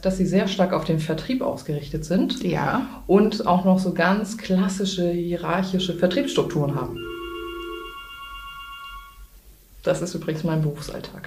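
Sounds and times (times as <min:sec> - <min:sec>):
speech: 0:00.0 - 0:07.1, 0:09.8 - 0:11.2
low hum: 0:00.0 - 0:11.2
telephone ringing with a steady electronic tone: 0:06.0 - 0:09.3.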